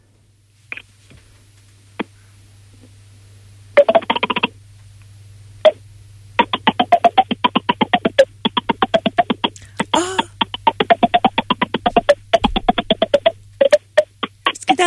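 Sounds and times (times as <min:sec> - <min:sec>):
low steady hum: 0:00.0 - 0:14.8
melody played by hollow tapping on puffed cheeks: 0:06.4 - 0:14.8.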